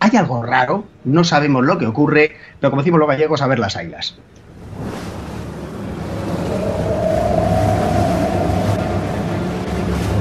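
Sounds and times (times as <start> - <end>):
speech: 0.1 - 4.9
wind: 4.2 - 10.1
rough stormy sea with heavy swell: 4.4 - 10.1
deep engine-like rumble: 5.4 - 10.1.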